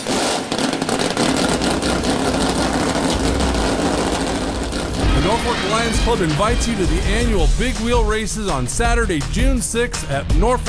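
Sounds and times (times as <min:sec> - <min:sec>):
several engines starting and revving: 0:00.8 - 0:07.8
speech: 0:05.3 - 0:10.6.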